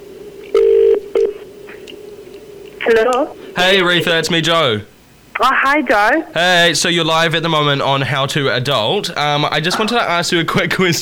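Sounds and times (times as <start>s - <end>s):
faint constant hum: 0.0s - 10.9s
outgoing telephone call ring tone: 0.6s - 1.4s
speech: 2.9s - 10.9s.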